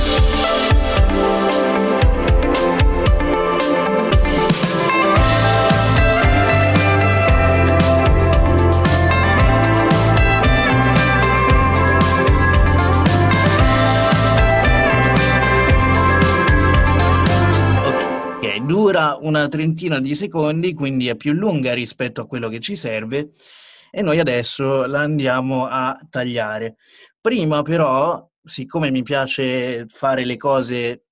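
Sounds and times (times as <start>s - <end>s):
music backing track with heavy bass line: 0.0s - 20.3s
speech: 19.3s - 31.0s.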